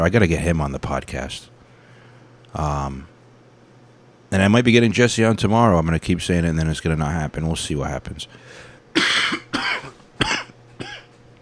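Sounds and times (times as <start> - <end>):
speech: 0.0 - 1.5, 2.5 - 3.1, 4.3 - 9.2
person coughing from vape smoke going down the wrong way: 8.9 - 11.1.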